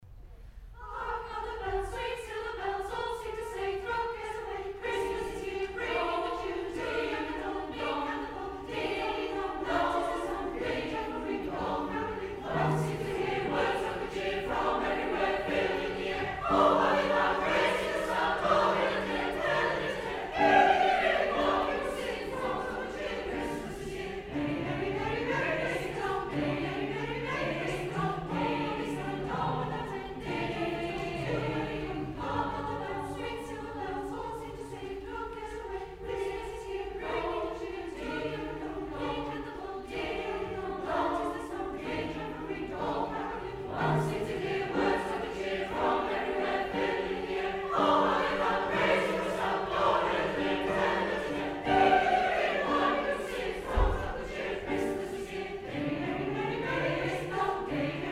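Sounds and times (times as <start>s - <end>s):
christmas carol music: 1.0s - 58.1s.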